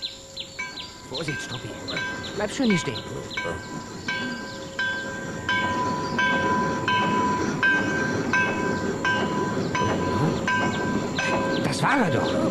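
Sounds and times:
railway crossing bell ringing: 0:00.0 - 0:12.5
train rumbling past a railway crossing: 0:00.0 - 0:12.5
speech: 0:01.1 - 0:04.6, 0:11.8 - 0:12.5.

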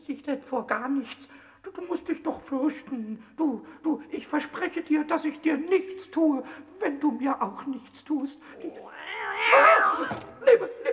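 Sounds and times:
speech: 0:00.3 - 0:10.9
cat meowing: 0:08.6 - 0:10.4.

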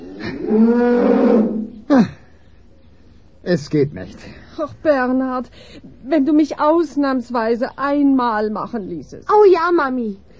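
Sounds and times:
cow mooing in fright: 0:00.0 - 0:01.8
speech: 0:00.5 - 0:02.2, 0:03.5 - 0:10.3.

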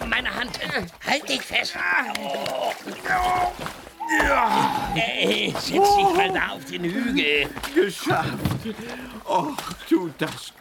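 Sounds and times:
water splashing as someone climbs out of a stream: 0:00.0 - 0:10.5
speech: 0:00.4 - 0:10.5
strained voices: 0:01.9 - 0:09.8.

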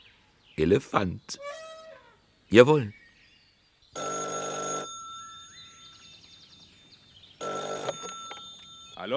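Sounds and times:
speech: 0:00.6 - 0:01.6, 0:02.5 - 0:03.0
telephone ringing with harmonic bell tone: 0:04.0 - 0:06.3, 0:07.4 - 0:09.1.

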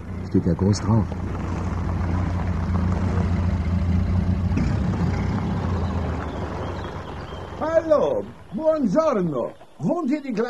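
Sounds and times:
old car engine rumbling while driving onto a farmyard: 0:00.0 - 0:10.4
speech: 0:00.3 - 0:01.5, 0:07.6 - 0:10.4.

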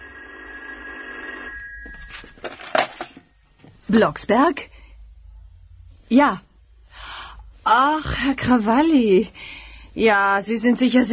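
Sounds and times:
telephone ringing with a shrill electronic trill: 0:00.0 - 0:03.4
speech: 0:03.9 - 0:04.7, 0:06.1 - 0:06.5, 0:07.7 - 0:11.1.

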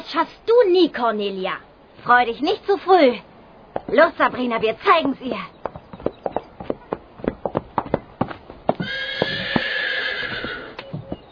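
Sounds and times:
speech: 0:00.1 - 0:03.3, 0:03.9 - 0:05.6
show-jumping horse hoofbeats: 0:03.7 - 0:11.3
show-jumping horse whinnying, refusing an obstacle: 0:08.8 - 0:11.2.

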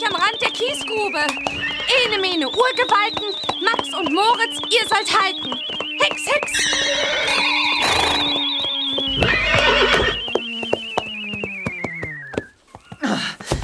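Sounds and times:
speech: 0:00.0 - 0:07.6
clattering hoofbeats of two ponies galloping at night: 0:00.0 - 0:13.6
pony whinnying at night at the edge of a gravel pit: 0:06.6 - 0:08.3, 0:09.1 - 0:10.2.

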